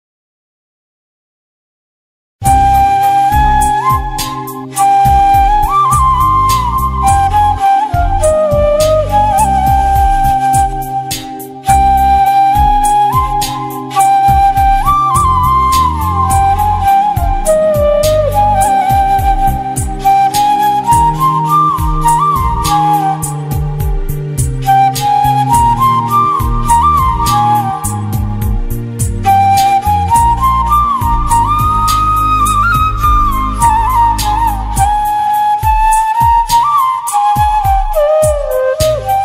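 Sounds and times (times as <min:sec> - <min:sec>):
South Indian flute background music: 0:02.4 - 0:39.2.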